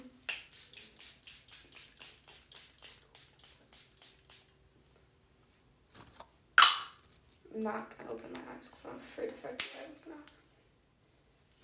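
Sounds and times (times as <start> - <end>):
setting spray misted onto a face: 0.2 - 4.6
speech: 7.6 - 10.4.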